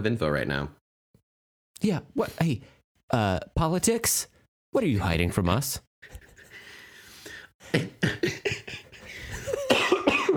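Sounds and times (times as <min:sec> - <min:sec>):
speech: 0:00.0 - 0:00.8, 0:01.8 - 0:06.2, 0:07.6 - 0:08.2
strained wheezy laughter-like breaths: 0:06.0 - 0:09.7
person coughing loudly while trying to laugh: 0:07.7 - 0:10.3.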